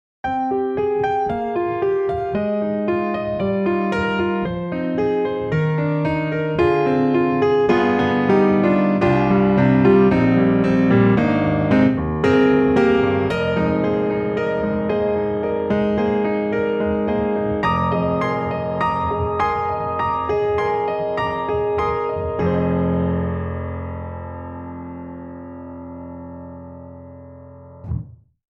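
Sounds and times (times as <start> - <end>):
sentimental grand piano piece: 0.2 - 28.0.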